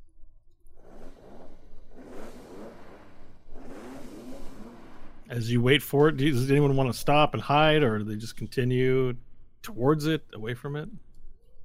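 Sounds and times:
distant vehicle engine revving: 0.8 - 6.7
speech: 5.3 - 11.0.

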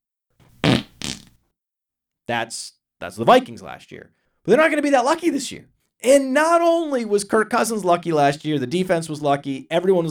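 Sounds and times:
comic fart sound effect: 0.6 - 1.4
speech: 2.3 - 10.0.

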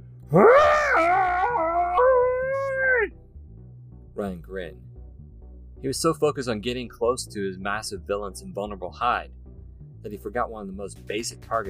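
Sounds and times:
speech: 0.3 - 0.6, 4.2 - 4.9, 5.8 - 11.6
booming monster scream: 0.3 - 2.6.

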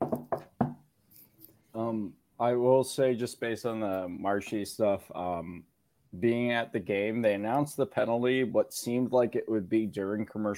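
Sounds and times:
knocking on wood: 0.0 - 0.8
speech: 1.8 - 10.5.

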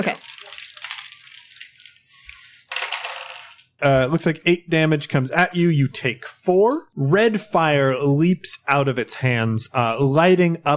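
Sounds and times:
speech: 0.0 - 0.3, 3.8 - 10.7
dice clattering across a hard surface in a tabletop game: 0.0 - 3.8.

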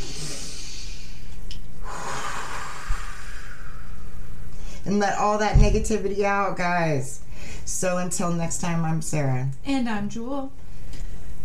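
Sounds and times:
snort-like puff of breath: 0.0 - 1.2, 1.8 - 3.8
group breathing deeply together: 0.0 - 4.8, 7.3 - 7.7
speech: 4.9 - 10.6.

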